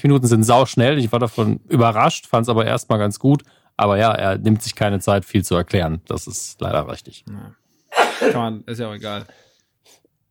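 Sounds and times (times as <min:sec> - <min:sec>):
speech: 0:00.0 - 0:07.6, 0:08.2 - 0:10.0
sneeze: 0:07.9 - 0:08.4.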